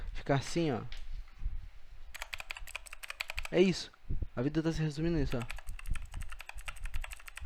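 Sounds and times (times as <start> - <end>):
speech: 0.3 - 1.0, 3.5 - 5.6
computer keyboard typing: 2.1 - 3.6, 5.3 - 7.4.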